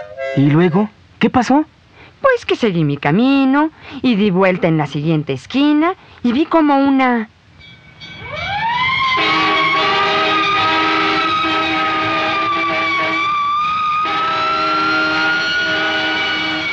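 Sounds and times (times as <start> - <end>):
speech: 0.4 - 7.4
loud ambulance siren wailing as the ambulance drives very fast: 8.2 - 16.7.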